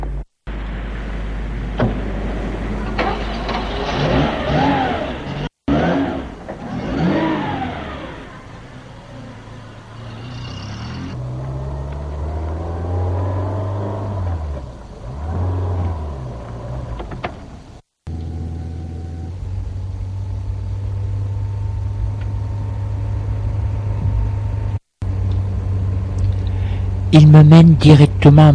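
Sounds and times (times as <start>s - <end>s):
black Rolls-Royce engine idling, revving and pulling away through gear changes: 0.0s - 28.5s
speech: 27.2s - 28.5s.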